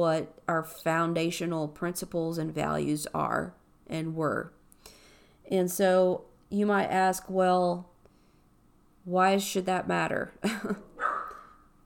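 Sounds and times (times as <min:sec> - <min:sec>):
speech: 0:00.0 - 0:07.9, 0:09.0 - 0:10.9
puppy barking: 0:11.0 - 0:11.6.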